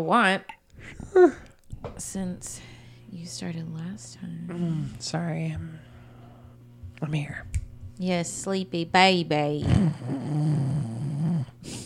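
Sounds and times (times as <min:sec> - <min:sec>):
speech: 0:00.0 - 0:05.9, 0:07.0 - 0:11.8
person doing an exaggerated fake snore: 0:09.6 - 0:11.8.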